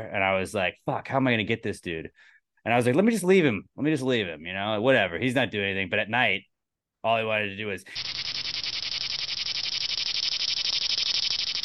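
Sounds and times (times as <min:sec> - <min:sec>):
speech: 0:00.0 - 0:08.2
person's voice imitating a chirping insect: 0:07.9 - 0:11.6.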